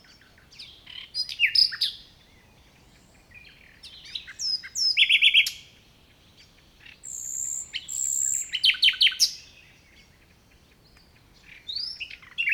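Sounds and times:
Common nightingale Luscinia megarhynchos singing: 0:00.0 - 0:12.5.

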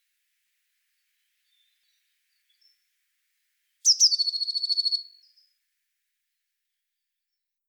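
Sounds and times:
Eurasian blue tit Cyanistes caeruleus song trill: 0:03.8 - 0:05.4.

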